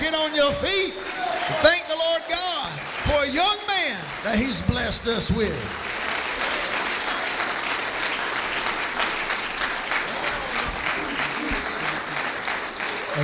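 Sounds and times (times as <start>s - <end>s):
scattered voices and cheers: 0.0s - 6.8s, 10.0s - 12.2s
church audience applauding: 0.0s - 13.2s
speech: 4.4s - 5.9s
laughter: 9.0s - 13.2s.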